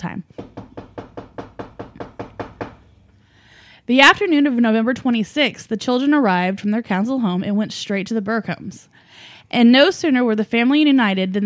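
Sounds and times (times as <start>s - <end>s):
violent forceful knocking: 0.3s - 2.9s
speech: 3.9s - 11.4s.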